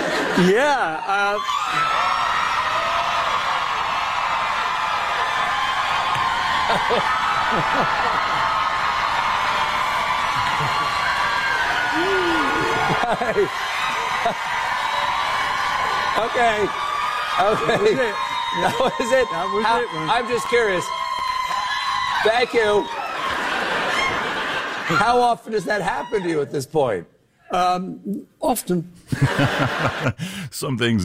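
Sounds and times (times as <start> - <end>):
laughter: 0.0 - 1.4, 6.4 - 8.8, 9.8 - 14.9, 17.4 - 20.3, 22.2 - 26.6, 29.1 - 30.5
speech: 0.4 - 2.1, 6.7 - 8.4, 12.0 - 14.6, 16.2 - 21.0, 22.2 - 23.0, 24.9 - 31.0
girls screaming in a theater balcony: 1.1 - 25.2.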